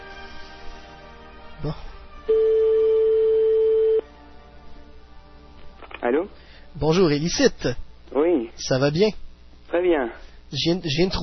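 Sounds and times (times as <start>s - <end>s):
speech: 1.6s - 2.0s, 6.1s - 7.8s, 8.4s - 11.2s
European telephone ringing tone: 2.3s - 4.0s.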